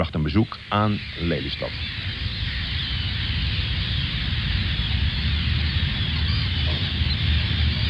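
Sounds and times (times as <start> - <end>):
speech: 0.0 - 2.0
chorus of many gulls screeching in a polder beside a shipyard: 0.0 - 7.8
low rumble of wind: 0.0 - 7.8.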